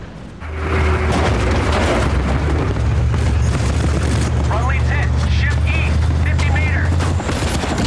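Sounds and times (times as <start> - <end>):
heavy Humvee engine rumbling: 0.0 - 7.8
loud explosion on a bridge: 0.6 - 4.6.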